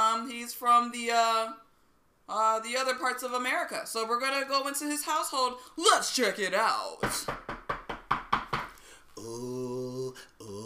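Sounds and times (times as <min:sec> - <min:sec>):
speech: 0:00.5 - 0:01.6, 0:02.3 - 0:07.5, 0:09.2 - 0:10.6
knocking on a front door: 0:07.0 - 0:08.7.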